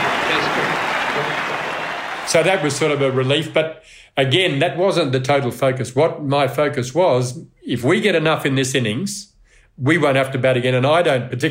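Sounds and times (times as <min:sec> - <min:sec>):
stadium crowd at a cricket match in Australia roaring and cheering: 0:00.0 - 0:03.6
speech: 0:02.3 - 0:11.4.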